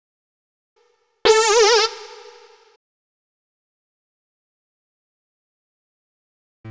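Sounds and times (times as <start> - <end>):
funky lead riff: 1.3 - 2.6.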